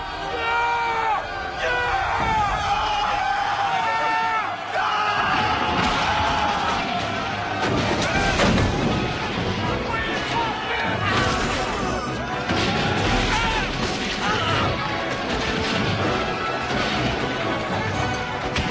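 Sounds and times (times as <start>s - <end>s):
loud dense crowd of men yelling and hollering: 0.0s - 18.6s
crashing noises: 5.2s - 18.6s.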